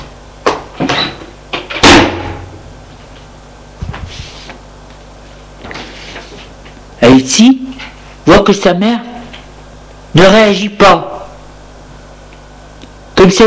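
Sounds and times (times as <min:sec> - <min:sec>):
door yanked and slammed shut: 0:01.8 - 0:02.5
speech: 0:07.0 - 0:09.1, 0:10.1 - 0:11.1, 0:13.2 - 0:13.4.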